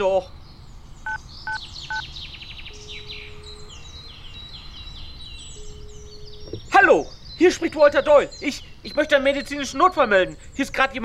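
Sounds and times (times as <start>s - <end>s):
speech: 0.0s - 0.4s, 7.5s - 11.0s
birds chirping and twittering in a park: 0.0s - 11.0s
touch-tone keypad beeps of a mobile phone being dialed in a park: 1.1s - 2.0s.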